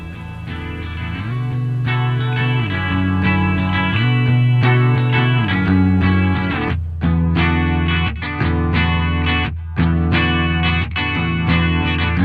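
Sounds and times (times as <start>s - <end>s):
loud instrumental rock song with heavily distorted guitars: 0.0s - 12.2s
rock drums: 0.0s - 12.2s.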